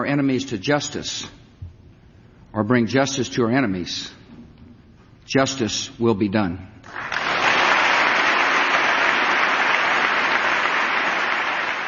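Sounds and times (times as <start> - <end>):
speech: 0.0 - 1.4, 2.6 - 4.2, 5.3 - 7.1
sustained dense applause from members of Congress after a speech: 6.9 - 11.8.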